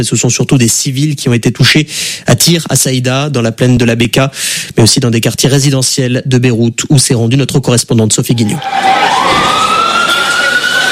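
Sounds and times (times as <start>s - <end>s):
speech: 0.0s - 10.2s
ambulance siren wailing through a city: 8.5s - 10.9s.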